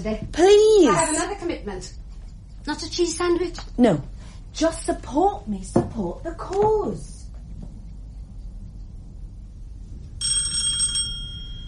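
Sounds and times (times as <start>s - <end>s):
speech: 0.0s - 2.0s, 2.6s - 7.2s
low rumble: 0.0s - 10.2s
single bright bell strike with sustained metallic tone: 10.2s - 11.6s.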